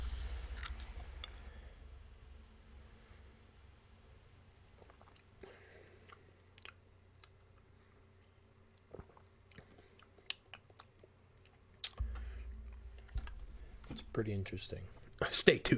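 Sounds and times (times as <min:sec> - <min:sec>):
can of peach pear liqueur opening: 0:00.0 - 0:01.4
crackles and pops of carbonation: 0:00.0 - 0:02.3, 0:11.8 - 0:15.7
low hum: 0:00.0 - 0:15.7
speech: 0:14.2 - 0:15.7.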